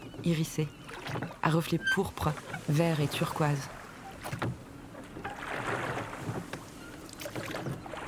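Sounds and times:
gentle water lapping: 0.0s - 8.0s
oars of a small launch dipping and splashing: 0.0s - 8.0s
soft wash of wind: 0.0s - 8.0s
speech: 0.2s - 4.6s.

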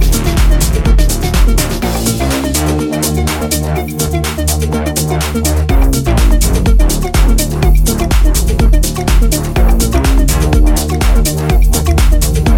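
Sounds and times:
loud dense house track with fast beat: 0.0s - 12.5s.

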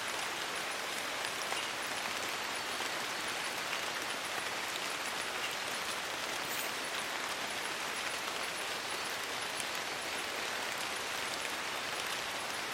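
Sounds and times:
gentle rain in a rainforest: 0.0s - 12.7s.

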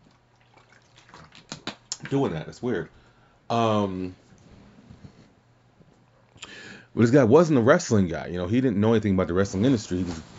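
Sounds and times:
person taking a swig of water: 0.0s - 2.2s
speech: 2.1s - 4.2s, 7.0s - 10.3s.

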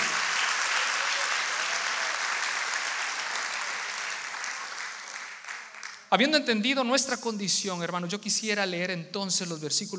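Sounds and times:
congregation applauding loudly: 0.0s - 6.1s
speech: 6.1s - 9.9s.

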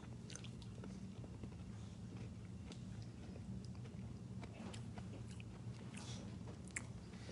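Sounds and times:
low hum: 0.0s - 7.3s
person chewing a fizzy lemon lime candy: 0.0s - 7.3s.

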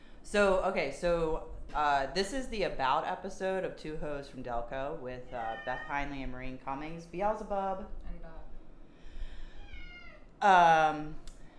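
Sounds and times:
low hiss: 0.0s - 11.5s
speech: 0.3s - 8.4s, 10.4s - 11.5s
cat meowing: 5.3s - 6.1s, 9.5s - 10.4s.

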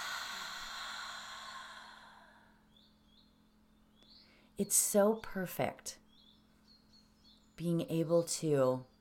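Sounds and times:
person exhaling during a guided breathing exercise: 0.0s - 2.6s
speech: 4.6s - 6.0s, 7.6s - 8.9s.

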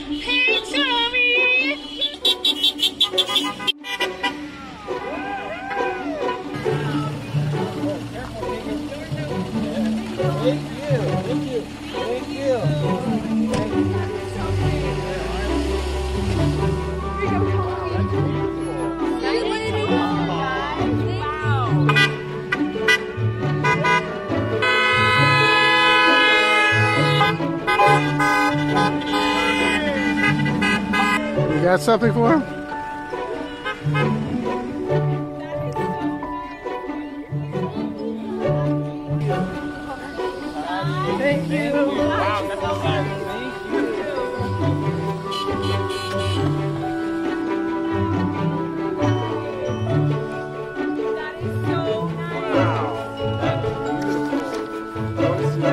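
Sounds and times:
car horns honking during a car parade: 0.0s - 37.1s, 38.9s - 55.7s
voices calling out during a car parade: 0.0s - 55.7s
people chattering during a car parade: 4.1s - 55.7s.

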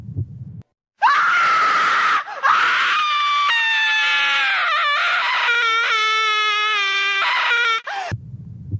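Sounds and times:
low rumbling: 0.0s - 0.7s, 8.1s - 8.7s
loud shrill scream in a hallway: 1.0s - 8.0s.

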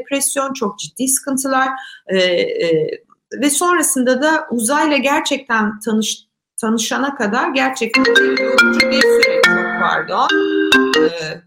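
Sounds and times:
speech: 0.0s - 11.4s
melodic mobile phone ringtone through a computer: 8.0s - 11.4s.

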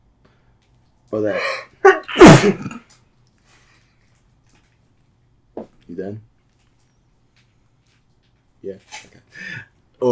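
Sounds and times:
speech: 1.1s - 1.6s, 2.4s - 2.7s, 6.0s - 6.3s, 8.6s - 10.1s
sneeze: 1.9s - 2.8s.

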